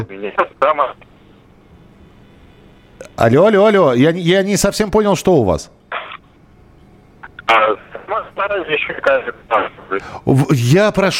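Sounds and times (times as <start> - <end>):
garbled voice over a thin narrowband phone line: 0.0 - 1.0, 7.2 - 10.0
speech: 0.0 - 1.1, 3.2 - 5.8, 7.5 - 11.1.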